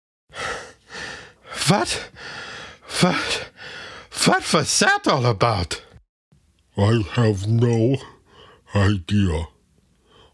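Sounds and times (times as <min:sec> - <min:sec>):
heavy exhausted panting after climbing up steps: 0:00.3 - 0:04.8
voiced groaning breaths: 0:00.4 - 0:04.5
speech: 0:01.7 - 0:05.9, 0:06.8 - 0:08.1, 0:08.7 - 0:09.5.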